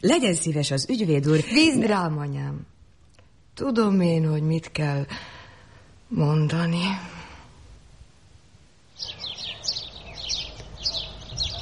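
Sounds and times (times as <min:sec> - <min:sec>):
speech: 0:00.0 - 0:02.7, 0:03.6 - 0:05.4, 0:06.1 - 0:07.2
sparrows chirping: 0:08.9 - 0:11.6.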